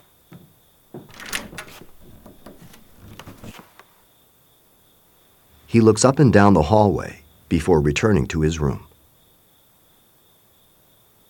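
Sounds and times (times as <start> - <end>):
quiet steady hum: 0.0 - 11.0
soft knocks and shuffles: 0.3 - 4.0
door latch clicks and wooden rattles: 0.4 - 3.6
speech: 5.7 - 8.9.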